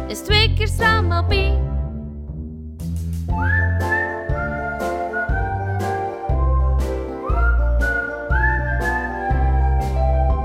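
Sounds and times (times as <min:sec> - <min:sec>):
speech: 0:00.2 - 0:01.6
steady instrumental accompaniment: 0:02.8 - 0:10.4
starling-like whistled tune: 0:03.3 - 0:10.4.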